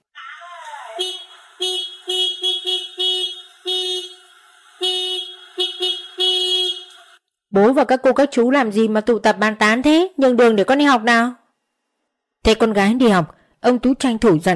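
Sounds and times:
motorbike horn honking: 1.0 - 7.2
speech: 7.6 - 11.4, 12.4 - 14.5.

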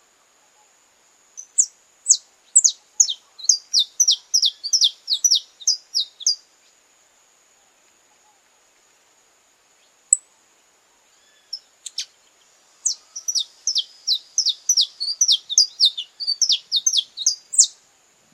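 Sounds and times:
purebred Belgian canary singing: 1.4 - 6.4, 11.2 - 12.2, 12.8 - 17.8.

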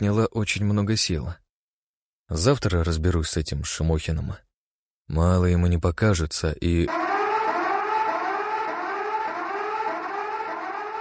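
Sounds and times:
speech: 0.0 - 1.4, 2.3 - 4.5, 5.1 - 7.1
very loud siren wailing: 6.9 - 10.9.

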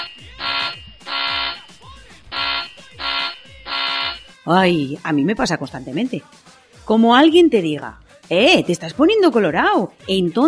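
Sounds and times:
buzzing electronic alarm sound effect: 0.0 - 4.4
speech: 4.5 - 10.4.

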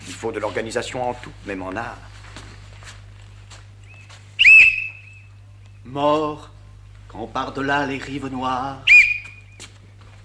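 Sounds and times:
speech: 0.2 - 2.1, 5.9 - 8.9
sharp whistle blast blown to cut off a recitation during a stage performance: 4.4 - 5.3, 8.9 - 9.4.

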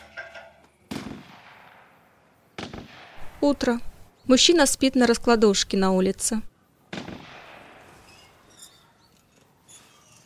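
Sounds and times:
hunter's gunshot outdoors in the morning: 0.9 - 2.0, 2.6 - 3.4, 6.9 - 8.0
speech: 3.4 - 6.5.

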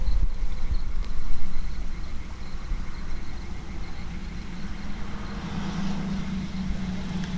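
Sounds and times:
faint insect-like chirping: 0.0 - 7.3
frog chorus: 1.6 - 7.3
trucks crossing a bridge over a small stream: 2.6 - 7.3.

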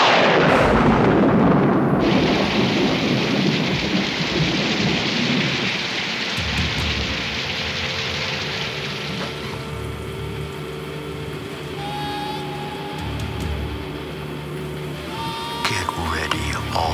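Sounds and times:
deep rolling thunder: 0.0 - 9.2
heavy rain downpour in a thunderstorm: 0.0 - 16.9.

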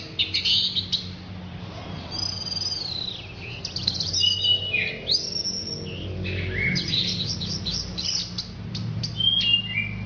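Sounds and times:
orange-headed thrush giving whistles and chirps: 2.0 - 10.0.

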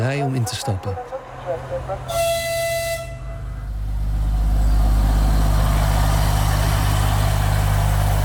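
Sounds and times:
speech: 0.0 - 2.4
small diesel train pulling out of a station in Kharkiv: 0.0 - 8.2
small diesel train horn blast: 2.1 - 3.7.

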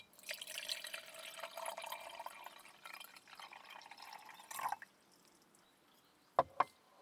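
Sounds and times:
hot water poured into a teapot: 0.0 - 5.4.

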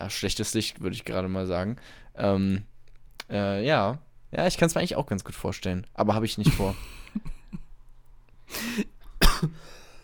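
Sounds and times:
speech: 0.1 - 2.7, 3.3 - 7.4, 8.5 - 9.8
person coughing harshly: 8.6 - 9.8.

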